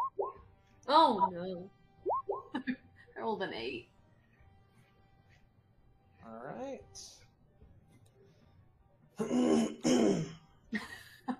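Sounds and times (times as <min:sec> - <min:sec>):
speech: 0:00.9 - 0:01.8, 0:02.6 - 0:03.9, 0:06.3 - 0:07.2, 0:09.2 - 0:11.0
person clearing throat with gravelly rasping pushes: 0:09.2 - 0:10.4.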